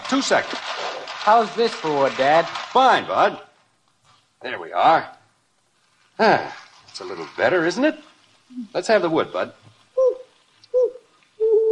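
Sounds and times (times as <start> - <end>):
speech: 0.1 - 3.5, 4.4 - 5.2, 6.2 - 10.1
owl hooting: 10.0 - 11.7.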